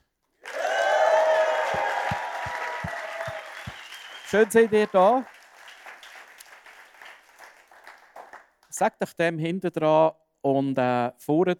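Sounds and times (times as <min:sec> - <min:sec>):
crowd whistles and cheers: 0:00.4 - 0:08.0
crowd applauding: 0:00.4 - 0:08.5
speech: 0:04.3 - 0:05.3, 0:08.8 - 0:11.5.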